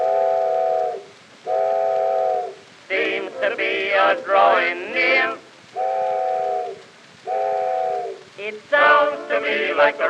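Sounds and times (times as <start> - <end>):
train whistle blasts: 0.0 - 2.6, 5.7 - 8.3
speech: 3.4 - 5.4, 8.5 - 10.0.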